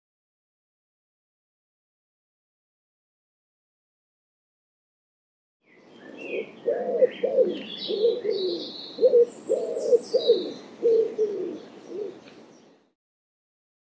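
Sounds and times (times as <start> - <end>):
bird giving soft low cooing notes: 5.8 - 12.6
speech: 6.7 - 9.4.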